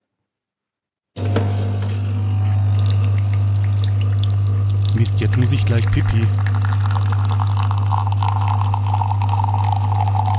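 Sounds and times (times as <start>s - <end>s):
fully automatic coffee machine pump humming: 1.2s - 10.3s
fresh coffee streaming and dripping into a small cup: 2.4s - 10.3s
speech: 5.1s - 6.5s.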